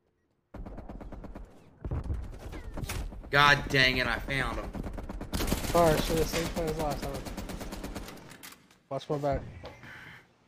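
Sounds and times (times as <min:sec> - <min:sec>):
video game gunfire: 0:00.5 - 0:08.3
speech: 0:03.3 - 0:04.8, 0:05.7 - 0:07.3, 0:08.9 - 0:09.6.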